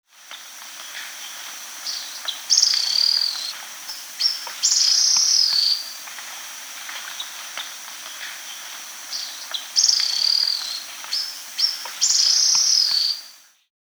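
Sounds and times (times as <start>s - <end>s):
Spectacled Bristle-Tyrant calling in South America: 0.2s - 13.5s.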